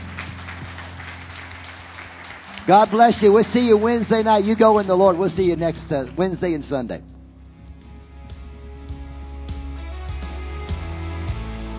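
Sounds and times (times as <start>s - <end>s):
applause during a church service: 0.0s - 6.3s
speech: 2.6s - 7.1s.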